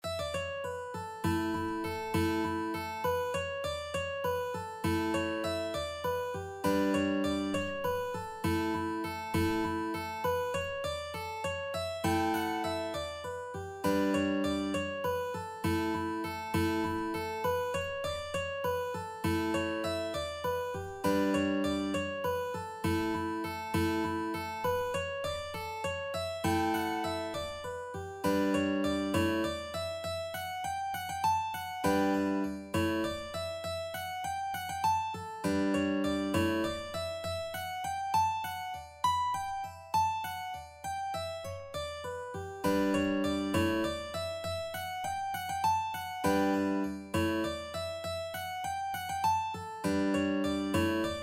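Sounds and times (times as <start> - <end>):
mandolin: 0.0 - 51.2.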